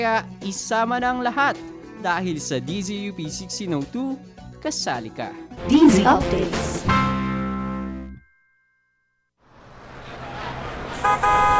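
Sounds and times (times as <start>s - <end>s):
speech: 0.0s - 7.1s
rumbling street traffic: 9.5s - 11.5s
jeepney horn honking: 11.0s - 11.5s.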